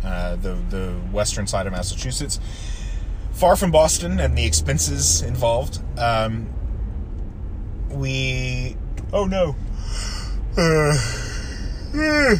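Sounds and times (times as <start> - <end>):
steady low rumble: 0.0 - 12.3
speech: 0.3 - 2.8, 3.4 - 6.6, 7.9 - 11.3, 11.9 - 12.3
person yawning: 9.8 - 12.3.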